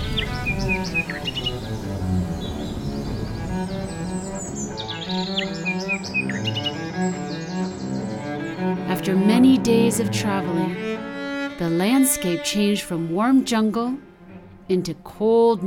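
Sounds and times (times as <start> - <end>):
birds singing cheerfully with chirps and trills: 0.0 - 10.9
steady low rumbling background: 0.0 - 15.6
speech: 9.0 - 14.1, 14.7 - 15.6.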